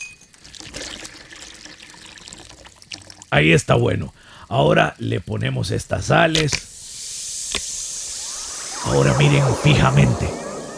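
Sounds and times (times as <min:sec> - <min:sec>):
water pouring from a bottle into a large dried gourd bowl: 0:00.3 - 0:04.8, 0:05.8 - 0:10.7
speech: 0:03.3 - 0:06.7, 0:08.9 - 0:10.4.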